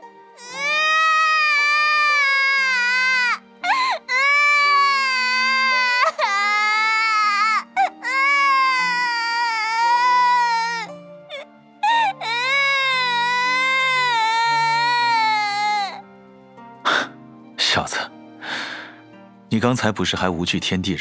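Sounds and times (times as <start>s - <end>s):
child crying loudly: 0.4s - 16.0s
speech: 19.6s - 20.9s.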